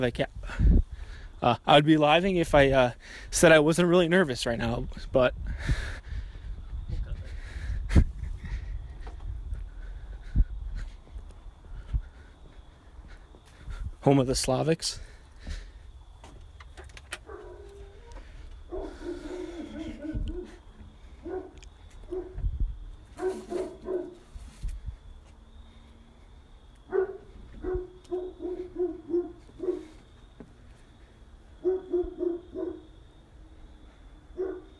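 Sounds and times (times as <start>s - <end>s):
speech: 0.0s - 0.8s, 1.4s - 6.1s, 7.9s - 8.1s, 14.0s - 15.1s
dogs barking: 17.2s - 18.1s, 18.7s - 20.6s, 21.2s - 22.4s, 23.2s - 24.2s, 26.9s - 30.0s, 31.6s - 33.0s, 34.3s - 34.7s.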